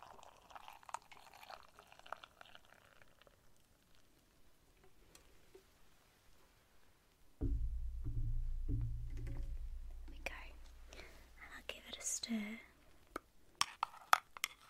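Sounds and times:
hot water from a boiled kettle pouring into a cup: 0.0 - 4.1
faint hiss: 3.1 - 13.5.

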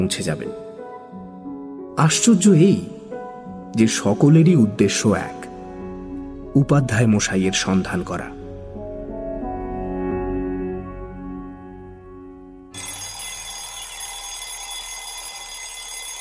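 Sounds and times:
speech: 0.0 - 0.7, 2.0 - 3.0, 3.7 - 5.5, 6.6 - 8.4
alarm clock ringing at dawn: 12.7 - 16.1.

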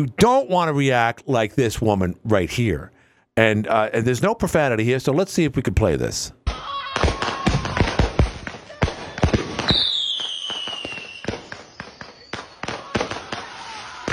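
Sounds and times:
speech: 0.0 - 6.4
fireworks banging and crackling outdoors: 6.9 - 14.1
whistling firework rocket streaking up: 9.0 - 14.1.

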